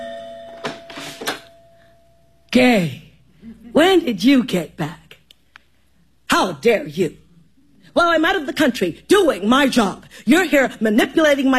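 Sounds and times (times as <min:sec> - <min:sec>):
doorbell ringing inside a home: 0:00.0 - 0:02.4
speech: 0:02.5 - 0:05.0, 0:06.4 - 0:07.2, 0:07.9 - 0:11.5.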